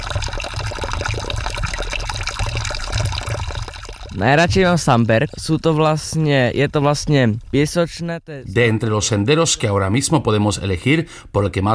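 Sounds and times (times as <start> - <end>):
water pouring from a spring fountain in Slovakia: 0.0 - 5.9
speech: 4.2 - 11.7.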